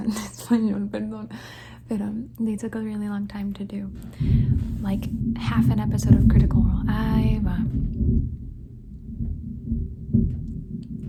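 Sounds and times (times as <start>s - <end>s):
speech: 0.1s - 8.4s
deep rolling thunder rumbling during a thunderstorm: 4.0s - 11.0s.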